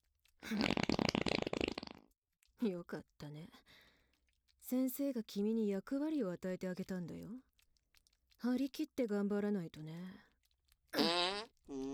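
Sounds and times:
fart: 0:00.4 - 0:02.2, 0:10.9 - 0:11.9
speech: 0:00.5 - 0:00.9, 0:02.6 - 0:03.8, 0:04.6 - 0:07.5, 0:08.4 - 0:10.3.

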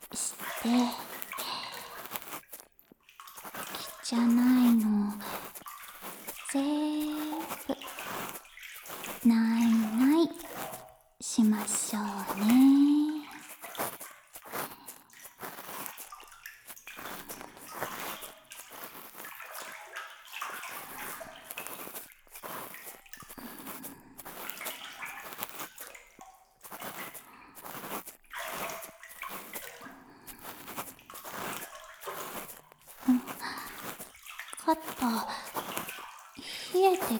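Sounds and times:
warm water poured over someone in a bath, sloshing and splashing: 0:00.0 - 0:37.1
speech: 0:00.6 - 0:01.0, 0:04.1 - 0:04.9.

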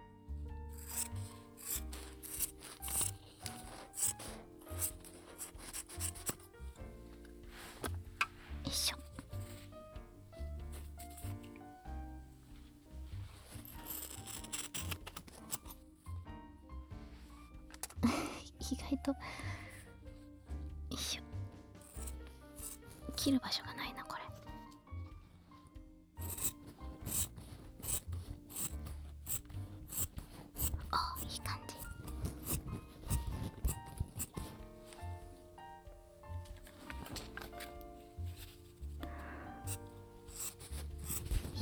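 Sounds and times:
soft musical bed humming: 0:00.0 - 0:41.6
scissors cutting fabric: 0:00.7 - 0:15.9, 0:21.8 - 0:23.3, 0:26.2 - 0:41.6
speech: 0:23.3 - 0:23.8.

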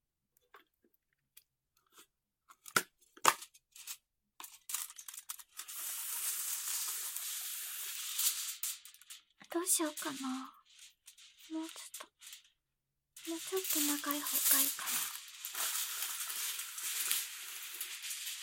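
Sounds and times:
aluminium foil being torn and spread on the floor: 0:03.2 - 0:12.6, 0:13.2 - 0:18.4
speech: 0:09.6 - 0:10.6, 0:13.3 - 0:15.2.

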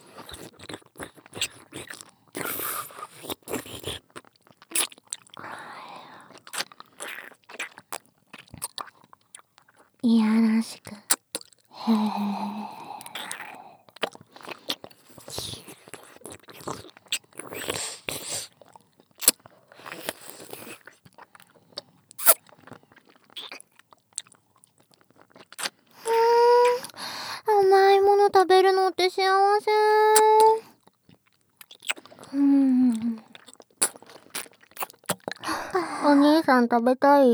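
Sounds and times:
candy being chewed and sucked: 0:00.0 - 0:09.9, 0:10.8 - 0:36.2
high voice-like tones: 0:26.1 - 0:26.9, 0:27.5 - 0:30.7, 0:35.5 - 0:37.3
speech: 0:36.6 - 0:37.3.

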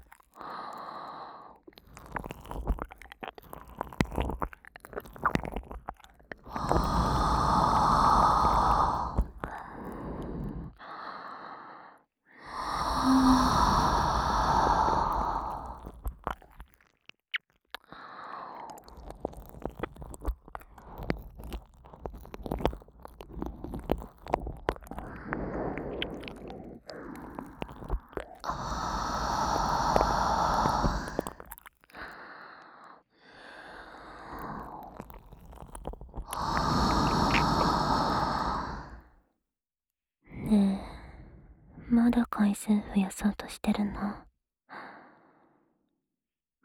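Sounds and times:
wet licking and smacking mouth sounds near the ear: 0:01.6 - 0:10.0, 0:18.6 - 0:32.2, 0:34.4 - 0:39.0
breathy exhales: 0:06.5 - 0:15.9, 0:23.2 - 0:35.1, 0:36.3 - 0:39.1
speech: 0:42.0 - 0:44.2.

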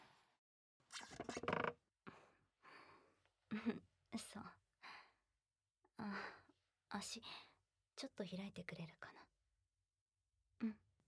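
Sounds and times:
computer chair creaking and squeaking as someone sits: 0:00.9 - 0:01.8
speech: 0:03.5 - 0:04.6, 0:06.0 - 0:09.3, 0:10.6 - 0:10.8.

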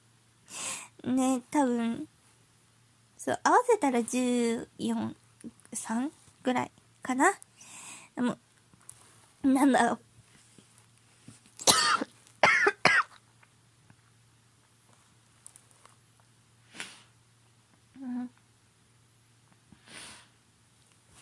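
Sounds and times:
speech: 0:01.0 - 0:02.1, 0:03.2 - 0:07.5, 0:08.2 - 0:08.4, 0:09.4 - 0:10.1
harsh coughs: 0:11.6 - 0:13.2
soft breathy exhale: 0:19.8 - 0:20.4.

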